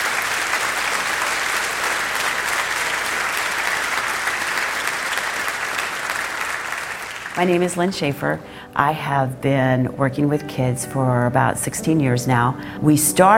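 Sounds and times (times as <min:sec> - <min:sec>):
audience giving a sustained ovation: 0:00.0 - 0:08.0
speech: 0:07.4 - 0:13.3.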